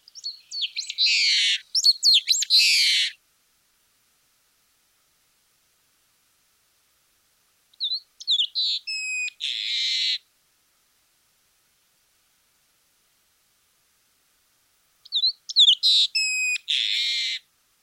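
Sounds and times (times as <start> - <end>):
long-tailed meadowlark singing: 0.0 - 3.2, 7.8 - 10.2, 15.0 - 17.4.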